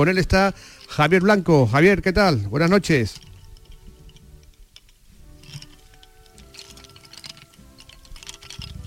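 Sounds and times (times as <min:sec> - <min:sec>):
speech: 0:00.0 - 0:03.3
wooden lace bobbins clicking together in a bobbin-lace maker's workshop: 0:00.0 - 0:08.8.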